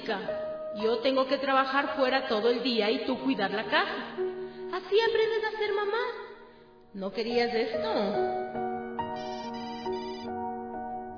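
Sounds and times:
speech: 0.1 - 6.2, 6.9 - 8.6
mobile phone ringtone with bright electronic melodic phrase: 9.1 - 10.4.

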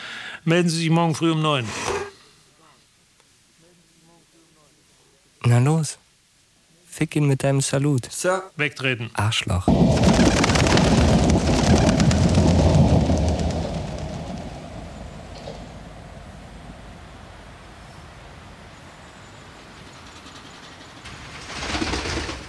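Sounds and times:
speech: 0.4 - 1.9, 5.5 - 6.0, 7.0 - 12.0
train passing by: 11.6 - 22.4.

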